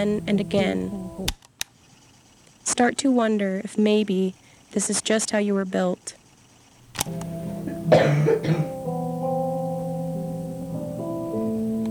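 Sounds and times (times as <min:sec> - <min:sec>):
steady humming musical drone: 0:00.0 - 0:01.3, 0:07.0 - 0:11.8
speech: 0:00.0 - 0:01.4, 0:02.6 - 0:06.2, 0:07.0 - 0:08.8
deep rattling chest cough: 0:07.5 - 0:08.8.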